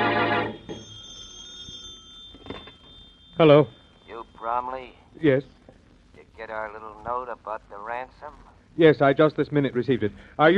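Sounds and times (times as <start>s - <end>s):
telephone bell ringing: 0.0s - 4.8s
faint hum: 0.0s - 10.5s
speech: 3.4s - 3.8s, 4.4s - 5.6s, 6.4s - 10.5s.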